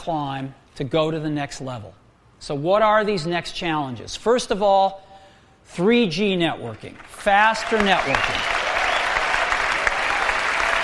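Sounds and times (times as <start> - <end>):
speech: 0.0 - 8.6
large audience clapping: 6.8 - 10.8.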